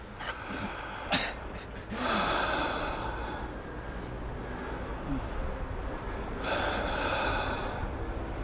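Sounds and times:
heavy breaths in and out: 0:00.2 - 0:08.4
person coughing: 0:01.1 - 0:01.7.

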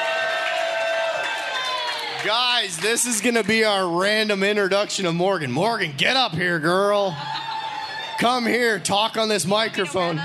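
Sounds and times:
audience clapping and cheering: 0:00.0 - 0:04.6, 0:07.3 - 0:08.8
speech: 0:02.2 - 0:07.4, 0:08.2 - 0:10.2
laughter: 0:06.7 - 0:08.8.

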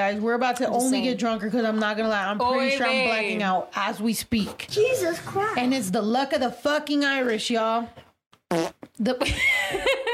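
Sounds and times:
speech: 0:00.0 - 0:10.1
man imitating a fart with his mouth: 0:08.4 - 0:09.0.

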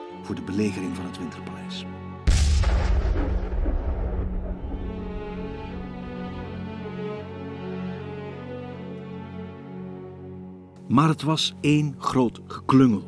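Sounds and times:
speech: 0:00.2 - 0:02.0, 0:02.6 - 0:03.5, 0:10.9 - 0:13.0
warship cannon firing a blank shot with rumbling echo: 0:02.3 - 0:06.6.

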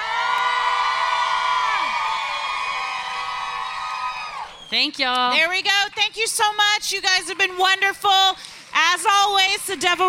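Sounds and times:
live show audience screaming and cheering: 0:00.0 - 0:04.8
speech: 0:04.7 - 0:10.0.

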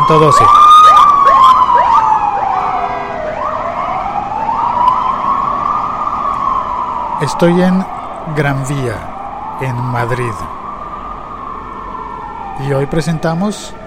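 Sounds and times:
city street traffic rumble on Gran Vía in Madrid: 0:00.0 - 0:13.8
siren of a small yellow ambulance van wailing: 0:00.0 - 0:13.8
speech: 0:00.1 - 0:00.7, 0:07.2 - 0:10.6, 0:12.6 - 0:13.8.

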